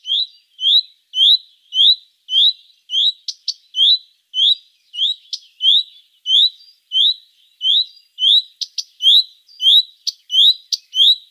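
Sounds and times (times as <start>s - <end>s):
Common Redstart giving rising whistled calls: 0.0s - 11.3s.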